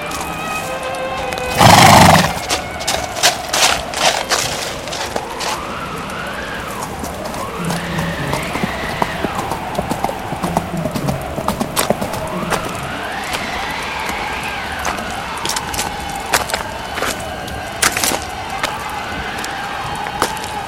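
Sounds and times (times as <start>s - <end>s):
horses' hooves clip-clopping: 0.0s - 20.6s
horse neighing: 1.5s - 2.4s.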